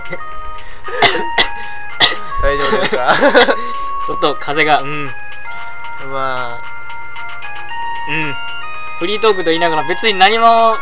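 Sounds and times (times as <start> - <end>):
speech: 0.1 - 1.2, 2.5 - 5.2, 6.0 - 6.7, 8.0 - 8.4, 9.0 - 10.8
person coughing: 0.9 - 3.5
laughter: 2.6 - 3.8.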